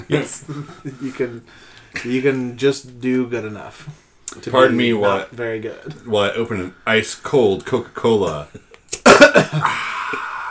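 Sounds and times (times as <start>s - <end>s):
speech: 0.1s - 9.9s
person coughing: 9.0s - 10.0s.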